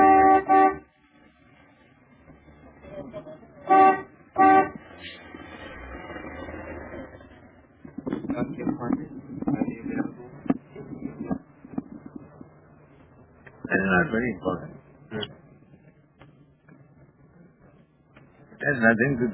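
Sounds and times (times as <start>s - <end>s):
car horn honking: 0.0s - 0.9s, 3.6s - 4.9s
street noise: 0.0s - 19.3s
voices: 7.9s - 12.5s, 13.5s - 15.4s, 17.5s - 19.3s
speech: 14.1s - 14.8s, 18.9s - 19.3s.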